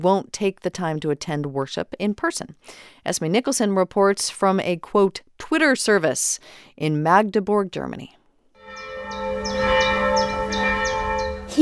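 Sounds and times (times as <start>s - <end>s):
speech: 0.0s - 8.2s
single church bell of a high Gothic church in Magdeburg pealing for evening prayers: 8.6s - 11.5s.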